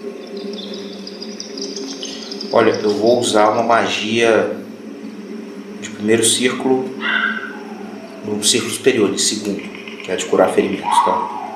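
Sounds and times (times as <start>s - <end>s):
birds chirping around midday: 0.0s - 11.5s
constant low drone: 0.0s - 11.5s
speech: 2.5s - 4.6s, 6.0s - 7.3s, 8.2s - 11.4s.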